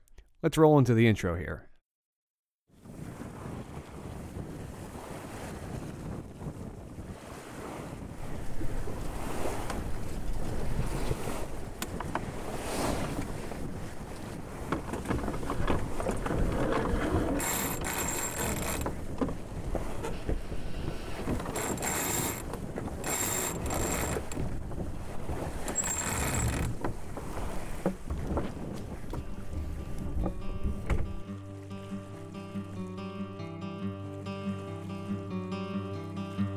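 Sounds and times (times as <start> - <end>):
speech: 0.4 - 1.7
strong wind gusts across a sailboat at anchor: 2.8 - 17.4, 18.6 - 25.8, 26.5 - 31.3
water sloshing against a sailboat hull: 2.8 - 36.4
sailboat rigging rattling: 14.8 - 19.5, 21.2 - 31.2.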